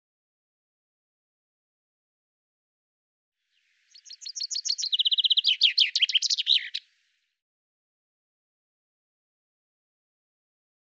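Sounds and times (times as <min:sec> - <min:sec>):
Common chaffinch song: 0:03.5 - 0:07.3.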